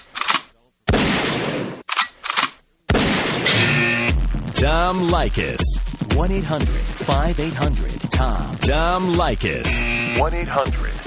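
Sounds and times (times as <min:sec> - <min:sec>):
gunshot sound effects: 0:00.0 - 0:03.8
speech: 0:04.6 - 0:11.0.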